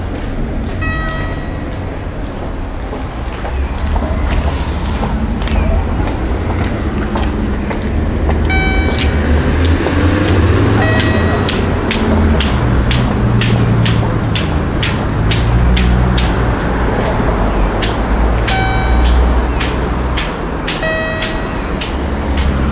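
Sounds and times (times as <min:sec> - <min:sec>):
low rumble of passing trains: 0:00.0 - 0:22.7
station ambience: 0:00.0 - 0:22.7
two-note ping-pong chime near station stairs: 0:00.8 - 0:02.0, 0:08.5 - 0:11.8, 0:18.5 - 0:19.7, 0:20.7 - 0:22.0.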